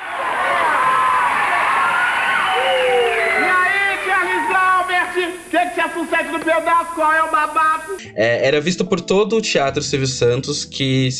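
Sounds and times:
television studio audience cheering and shouting: 0:00.0 - 0:08.0
speech: 0:05.5 - 0:11.1.

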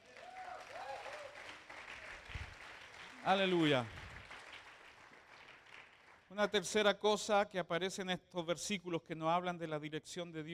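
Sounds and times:
audience applauding: 0:00.0 - 0:06.3
speech: 0:03.2 - 0:04.0, 0:06.4 - 0:10.5.

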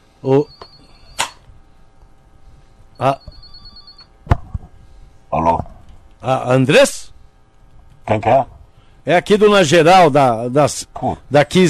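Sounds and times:
speech: 0:00.2 - 0:00.6, 0:03.0 - 0:03.2, 0:06.3 - 0:07.0, 0:08.1 - 0:11.6
telephone ringing as a call is placed: 0:00.4 - 0:01.2, 0:03.0 - 0:04.1.

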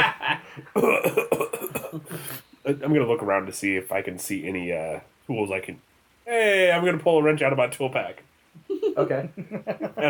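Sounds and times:
person coughing in a harsh fit: 0:00.8 - 0:02.3
speech: 0:02.7 - 0:10.0.

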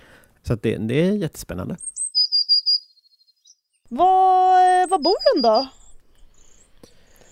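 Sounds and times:
speech: 0:00.5 - 0:01.9, 0:03.9 - 0:05.8
blue tit singing: 0:01.8 - 0:07.2.

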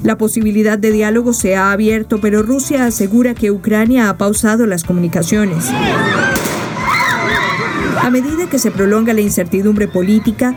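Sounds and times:
speech: 0:00.1 - 0:06.9, 0:08.0 - 0:10.5
people shouting and screaming in the streets of Ukraine: 0:05.4 - 0:10.5
gunshots in the streets of Ukraine: 0:06.2 - 0:07.4.

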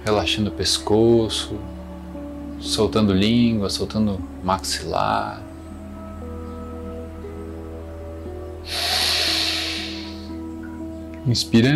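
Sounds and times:
speech: 0:00.0 - 0:01.8, 0:02.6 - 0:05.4, 0:11.2 - 0:11.7
slow steady exhale through the nose during a relaxation breathing exercise: 0:08.6 - 0:10.4.

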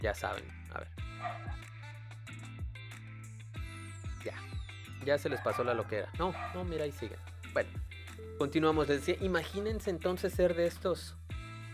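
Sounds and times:
speech: 0:00.0 - 0:01.8, 0:04.2 - 0:11.2
dogs barking short woofs: 0:01.1 - 0:01.7, 0:05.3 - 0:06.8.

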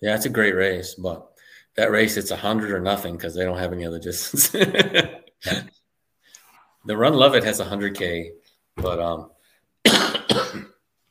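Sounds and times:
speech: 0:00.0 - 0:05.8, 0:06.8 - 0:10.7
laughter: 0:04.3 - 0:05.7
person coughing: 0:05.4 - 0:05.7, 0:09.8 - 0:10.8.

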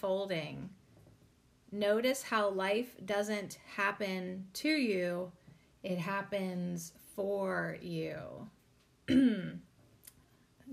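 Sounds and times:
speech: 0:00.0 - 0:00.8, 0:01.7 - 0:09.7
person clearing throat: 0:09.1 - 0:09.6.

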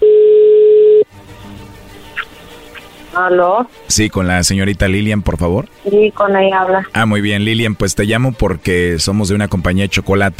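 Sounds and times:
loud steady telephone line tone: 0:00.0 - 0:01.1
speech: 0:03.2 - 0:10.3.

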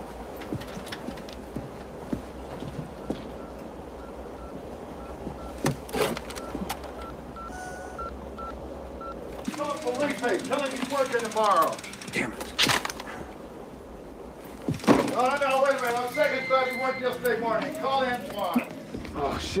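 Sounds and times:
busy rumbling background: 0:00.0 - 0:19.5
telephone keypad touch-tone dialing beeps: 0:03.4 - 0:05.6, 0:06.4 - 0:09.2, 0:16.1 - 0:17.2
speech: 0:10.2 - 0:12.5, 0:16.6 - 0:18.6, 0:19.2 - 0:19.5.

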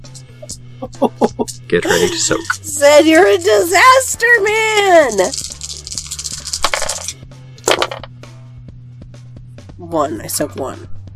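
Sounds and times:
speech: 0:00.5 - 0:05.5, 0:09.9 - 0:10.9
laughter: 0:00.8 - 0:02.7
dice clattering across a surface: 0:04.8 - 0:08.1.

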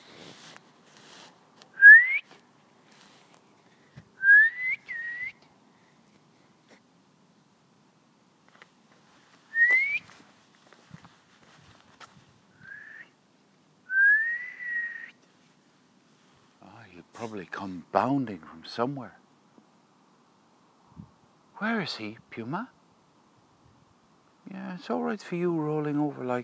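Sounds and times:
person whistling short rising call notes to call a lost dog: 0:01.8 - 0:02.3, 0:04.2 - 0:05.4, 0:09.6 - 0:10.1, 0:12.6 - 0:13.1, 0:13.9 - 0:15.2
speech: 0:17.2 - 0:19.2, 0:21.6 - 0:22.8, 0:24.8 - 0:26.4.

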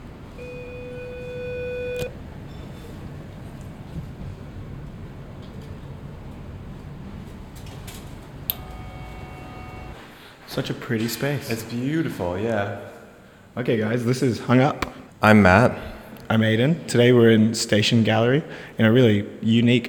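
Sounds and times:
door buzzer: 0:00.0 - 0:02.2, 0:08.5 - 0:10.0
faint short tone: 0:00.3 - 0:03.0, 0:08.5 - 0:10.0
speech: 0:10.6 - 0:12.9, 0:13.6 - 0:19.8.

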